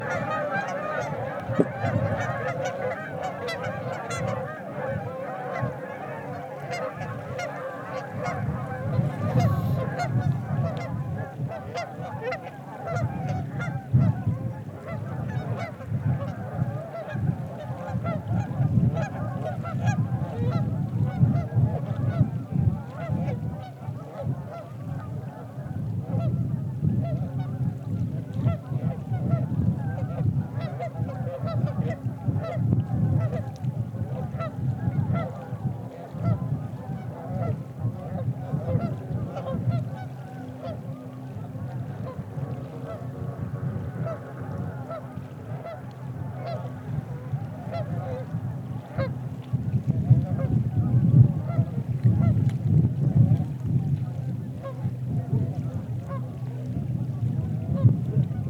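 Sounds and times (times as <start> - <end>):
geese in Colorado: 0.0 - 58.4.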